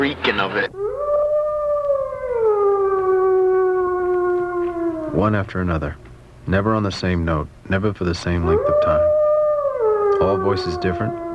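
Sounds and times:
speech: 0:00.0 - 0:00.9, 0:05.1 - 0:09.1, 0:10.2 - 0:11.2
wolf howling: 0:00.6 - 0:06.1, 0:08.3 - 0:11.3.

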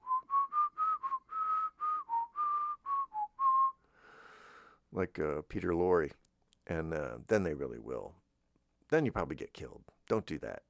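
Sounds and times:
person whistling a short melodic tune: 0:00.0 - 0:03.9
speech: 0:05.0 - 0:08.2, 0:08.9 - 0:10.6.

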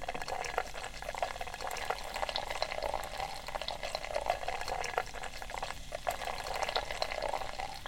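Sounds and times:
beer pouring from a can into a very big pint glass: 0:00.0 - 0:07.8.

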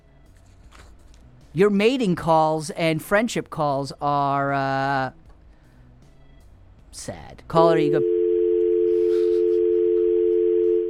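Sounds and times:
speech: 0:01.5 - 0:05.2, 0:07.0 - 0:08.1
telephone dial tone buzzing: 0:08.0 - 0:10.8.

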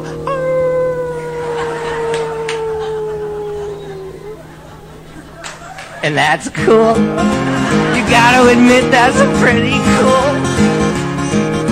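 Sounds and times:
person howling like a dog: 0:00.0 - 0:05.9, 0:09.0 - 0:10.5
faint steady hum: 0:00.0 - 0:10.5
laughter: 0:01.1 - 0:10.6
speech: 0:06.0 - 0:10.5.

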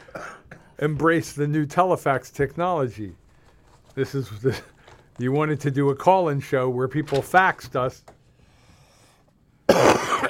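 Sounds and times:
wet phlegmy cough into a microphone: 0:00.0 - 0:00.8, 0:09.7 - 0:10.2
speech: 0:00.8 - 0:03.2, 0:04.0 - 0:08.2.

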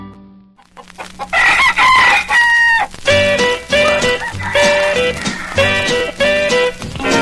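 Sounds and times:
chickens clucking: 0:00.6 - 0:07.1
rooster crowing: 0:00.7 - 0:05.9.

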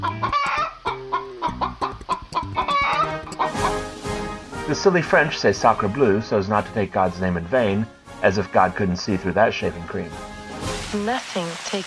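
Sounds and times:
chicken clucking: 0:00.0 - 0:03.9
speech: 0:04.7 - 0:10.3, 0:10.9 - 0:11.8.

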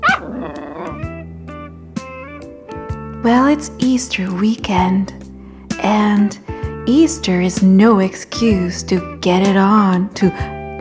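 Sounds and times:
dog barking: 0:00.0 - 0:01.0
speech: 0:03.2 - 0:05.2, 0:05.8 - 0:10.6.

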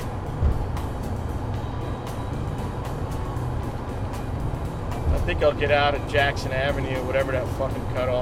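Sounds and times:
faint thumps passing under car wheels: 0:00.0 - 0:01.5, 0:03.0 - 0:05.9
road roar of a car moving fast on a highway: 0:00.0 - 0:08.2
speech: 0:05.3 - 0:08.2.

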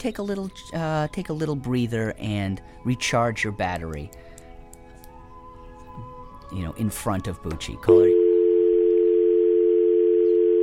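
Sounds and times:
speech: 0:00.0 - 0:04.3, 0:06.0 - 0:08.2
telephone dial tone: 0:07.9 - 0:10.6.

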